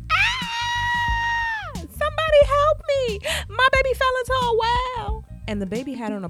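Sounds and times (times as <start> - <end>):
person screaming: 0.1 - 1.8
speech: 3.1 - 6.2.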